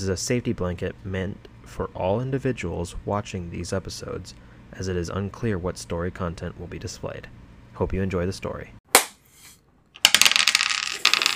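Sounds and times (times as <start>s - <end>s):
speech: 0.0s - 8.8s
dice rattling on a hard table: 9.4s - 11.3s.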